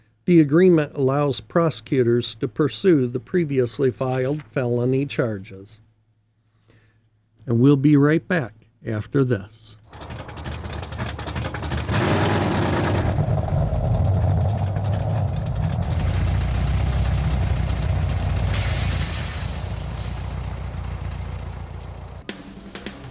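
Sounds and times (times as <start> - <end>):
speech: 0.3 - 5.8, 7.4 - 10.1
Chevy 350 small block V8 engine of a 1990 Chevy Corvette idling: 9.9 - 23.0.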